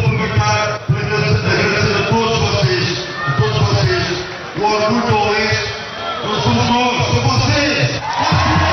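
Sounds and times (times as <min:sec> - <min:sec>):
large crowd of football fans shouting and chanting in celebration: 0:00.1 - 0:08.7
football fans whooping: 0:08.0 - 0:08.7.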